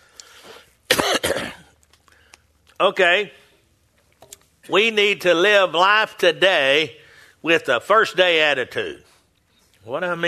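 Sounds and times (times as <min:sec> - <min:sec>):
person coughing from a tickle in the throat: 0:00.9 - 0:01.8
throat clearing from a tickle in the throat: 0:00.9 - 0:01.8
speech: 0:02.8 - 0:03.4, 0:04.7 - 0:09.1, 0:09.8 - 0:10.2.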